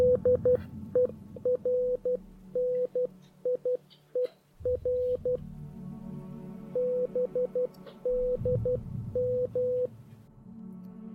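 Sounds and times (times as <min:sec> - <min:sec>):
Morse code distress message beeping: 0:00.0 - 0:05.4, 0:06.8 - 0:09.9.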